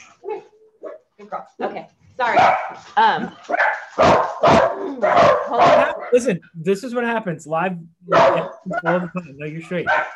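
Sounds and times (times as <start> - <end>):
dogs barking and yipping indoors: 0.0 - 1.6, 2.2 - 6.3, 8.1 - 10.1
speech: 1.3 - 10.1.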